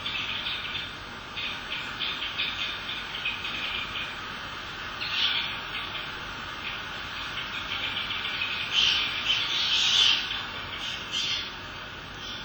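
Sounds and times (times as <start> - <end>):
small flock of bramblings calling: 0.0 - 12.4.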